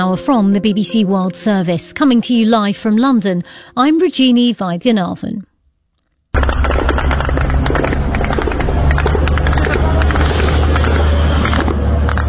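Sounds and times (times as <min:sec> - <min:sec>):
speech: 0:00.0 - 0:05.5
crackling bursts and sharp impacts from strikes on targets: 0:05.8 - 0:12.2
military drones humming overhead: 0:06.4 - 0:12.2.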